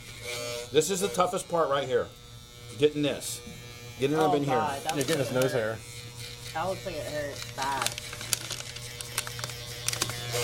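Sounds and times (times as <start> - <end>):
speech: 0.7 - 2.2, 2.8 - 5.9, 6.5 - 8.1
paper crinkling: 7.3 - 10.4.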